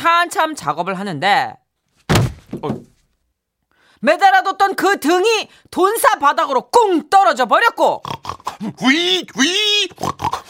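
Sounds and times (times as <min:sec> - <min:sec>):
speech: 0:00.0 - 0:01.6, 0:02.5 - 0:02.9, 0:04.0 - 0:10.4
voice imitating a startled pig squealing: 0:07.8 - 0:10.4
short grunting snorts of an imitated pig: 0:08.0 - 0:08.8, 0:09.9 - 0:10.4.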